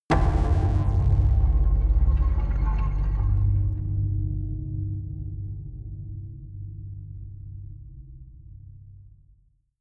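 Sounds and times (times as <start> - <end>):
big drum hits with flutter echo: 0.1 - 5.9.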